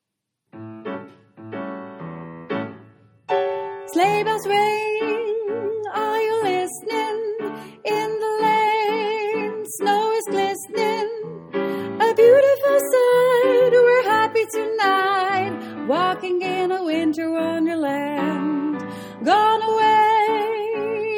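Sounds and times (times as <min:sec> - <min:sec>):
second soprano singing: 0:03.7 - 0:21.1.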